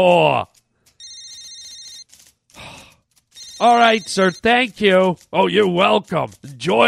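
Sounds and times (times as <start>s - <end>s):
speech: 0.0s - 0.5s, 3.6s - 6.8s
telephone ringing with electronic trill: 0.9s - 2.1s, 3.3s - 4.9s.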